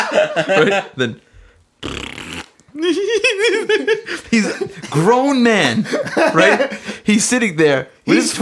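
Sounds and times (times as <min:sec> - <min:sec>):
laughter: 0:00.0 - 0:01.0, 0:02.8 - 0:05.1, 0:05.7 - 0:07.0
speech: 0:00.2 - 0:02.0, 0:02.8 - 0:08.4
buzzy fart noise played from a phone in a car: 0:01.8 - 0:02.6.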